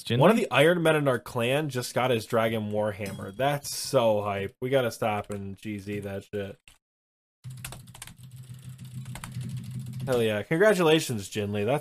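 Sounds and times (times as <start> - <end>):
speech: 0.0 - 6.8, 10.1 - 11.7
typing on a computer keyboard during an online game session: 7.5 - 10.2.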